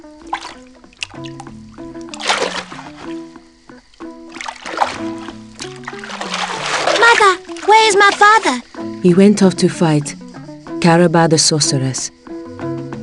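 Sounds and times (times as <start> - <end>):
water splashing: 0.0 - 3.4, 4.0 - 8.7
music with sustained tones: 0.0 - 13.0
speech: 1.2 - 1.5, 7.9 - 10.2, 10.8 - 12.2.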